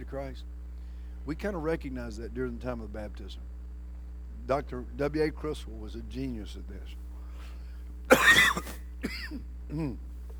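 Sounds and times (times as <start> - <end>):
steady low hum: 0.0 - 10.3
speech: 0.1 - 0.6, 1.2 - 3.6, 4.5 - 7.0, 8.3 - 10.1
person clearing throat: 8.1 - 10.0
person coughing harshly: 8.1 - 10.0.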